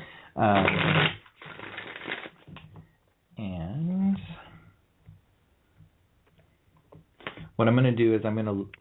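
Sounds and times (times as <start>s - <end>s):
speech: 0.4s - 1.0s, 7.6s - 8.8s
playing cards being shuffled and pulled: 0.5s - 2.6s.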